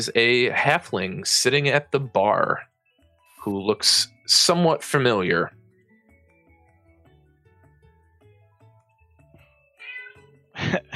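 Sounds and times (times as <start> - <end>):
speech: 0.0 - 2.7, 3.4 - 5.6
cat meowing loudly: 9.8 - 10.3.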